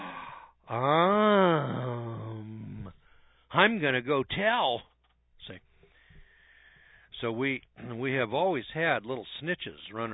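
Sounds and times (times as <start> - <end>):
person imitating a prissy little girl's gasp: 0.0 - 2.9
speech: 0.7 - 1.0, 3.6 - 5.7, 7.2 - 10.1.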